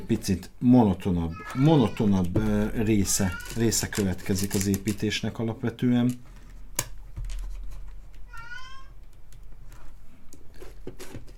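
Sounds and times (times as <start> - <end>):
speech: 0.1 - 6.3
cat meowing while wandering between two rooms: 8.3 - 9.0.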